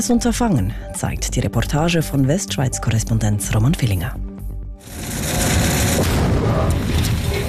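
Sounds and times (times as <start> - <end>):
speech: 0.0 - 4.3
loud sustained rumbling roar: 4.8 - 7.4
mine-clearing machine churning through earth: 4.8 - 7.4
landmine exploding under a mine-clearing machine: 5.3 - 7.4.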